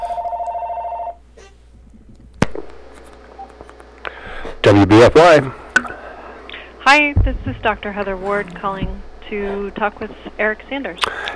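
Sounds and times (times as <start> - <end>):
telephone ringing for an incoming call: 0.0 - 1.2
speech: 4.6 - 5.6, 6.9 - 11.3.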